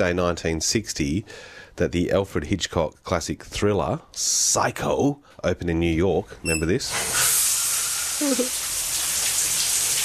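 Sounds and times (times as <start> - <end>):
speech: 0.0 - 7.4, 8.2 - 8.6
faint tonal squeak: 6.4 - 6.9
shower water spraying: 6.9 - 10.0.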